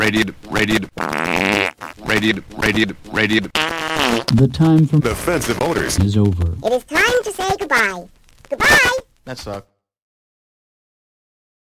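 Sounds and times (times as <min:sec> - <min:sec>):
voice imitating croaks of a South American farting frog: 0:00.0 - 0:04.4
speech: 0:00.0 - 0:09.7
vocal raspberry-like fart noise imitating a farting frog: 0:00.4 - 0:06.6.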